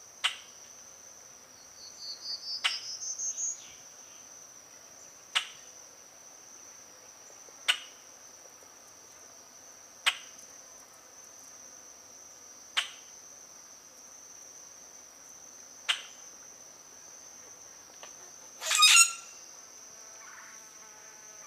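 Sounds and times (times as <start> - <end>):
high-pitched insect trill: 0.0 - 21.4
common grackle chack calls: 18.6 - 19.2
common grackle harsh squeaky call: 18.6 - 19.4.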